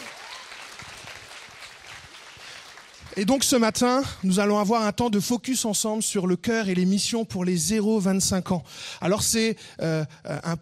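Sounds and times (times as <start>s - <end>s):
audience applauding: 0.0s - 4.2s
speech: 3.2s - 10.6s.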